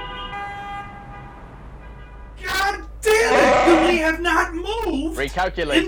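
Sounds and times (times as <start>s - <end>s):
car horns honking in a traffic jam: 2.0s - 4.2s
speech: 5.2s - 5.8s.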